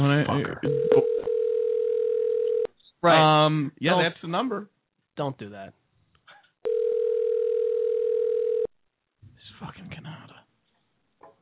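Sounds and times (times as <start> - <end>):
speech: 0.0 - 0.8, 3.0 - 5.8
phone call ringing tone through a handset speaker: 0.6 - 2.7, 6.6 - 8.7.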